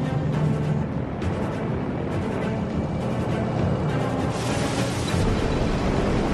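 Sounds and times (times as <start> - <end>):
water bomber plane engine roar: 0.0 - 6.3
water bomber plane scooping lake water with rushing spray: 4.3 - 6.3.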